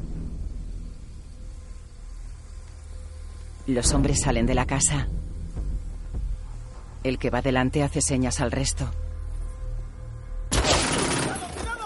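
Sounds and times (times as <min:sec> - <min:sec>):
low steady hum: 0:00.0 - 0:10.8
speech: 0:03.7 - 0:05.2, 0:07.0 - 0:09.0
rapid gunfire from more than one gun: 0:10.5 - 0:11.7.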